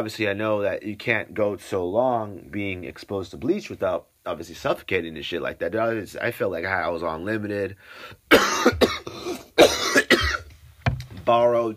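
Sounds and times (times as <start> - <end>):
speech: 0.0 - 9.4, 11.2 - 11.7
harsh forceful hacking coughing: 8.3 - 10.5.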